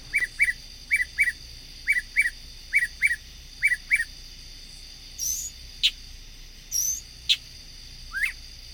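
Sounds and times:
mockingbird singing at night with imitations: 0.0s - 4.2s, 5.1s - 6.0s, 6.7s - 7.5s, 8.1s - 8.4s
insects droning: 0.0s - 8.7s.

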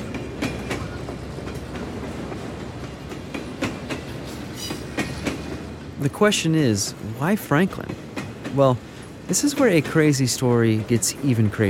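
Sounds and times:
train rolling along the rails with clickety-clack: 0.0s - 11.6s
speech: 6.0s - 11.6s.

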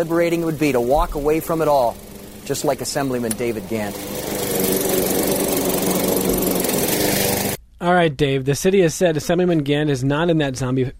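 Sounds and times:
speech: 0.0s - 4.3s, 7.8s - 10.9s
lawn mower engine running: 0.0s - 7.6s.

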